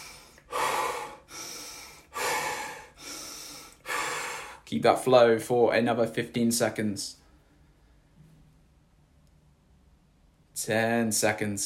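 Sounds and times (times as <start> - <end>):
rhythmic breathwork in through the nose and out through the mouth: 0.0 - 4.7
speech: 4.7 - 7.2, 10.6 - 11.6.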